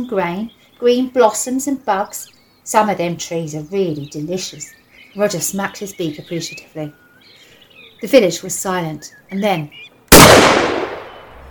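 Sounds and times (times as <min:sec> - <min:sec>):
speech: 0:00.0 - 0:07.0, 0:08.0 - 0:09.9
single gunshot from fields in the countryside: 0:10.1 - 0:11.3.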